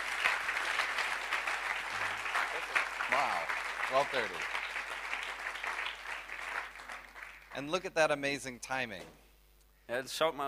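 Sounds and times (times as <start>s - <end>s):
crowd applauding a team: 0.0s - 7.8s
speech: 3.9s - 4.6s, 7.6s - 9.2s, 9.9s - 10.4s.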